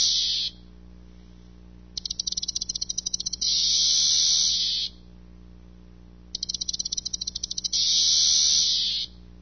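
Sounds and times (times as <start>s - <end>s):
cicada calling with rattling ticks and high-pitched buzz: 0.0s - 0.6s, 2.0s - 5.0s, 6.3s - 9.2s.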